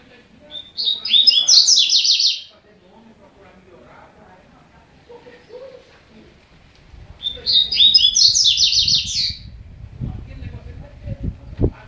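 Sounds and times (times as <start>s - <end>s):
double-collared seedeater high rapid slurred twittering: 0.5s - 2.5s, 7.2s - 9.5s.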